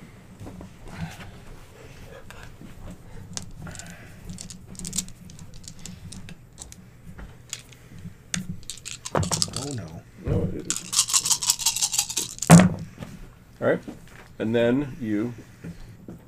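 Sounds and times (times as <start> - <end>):
steady low hum: 0.0 - 16.2
dice clattering on a table: 3.4 - 6.8, 7.5 - 7.8, 8.4 - 10.0, 10.7 - 12.8
speech: 13.6 - 15.5.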